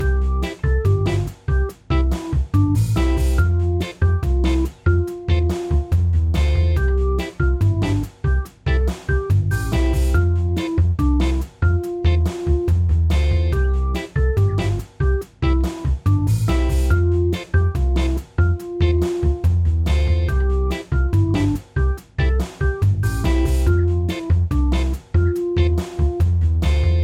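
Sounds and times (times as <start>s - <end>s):
elevator intermission music: 0.0s - 27.0s.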